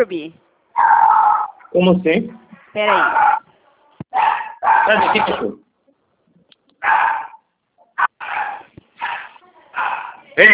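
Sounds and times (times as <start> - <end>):
speech: 0.0 - 0.9, 1.7 - 3.4, 4.1 - 5.6, 10.4 - 10.5
dog barking loudly: 2.8 - 3.4, 4.1 - 5.5, 6.8 - 10.3.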